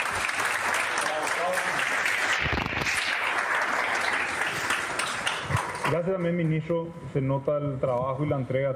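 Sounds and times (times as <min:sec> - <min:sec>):
audience applause: 0:00.0 - 0:06.0
speech: 0:05.9 - 0:08.7.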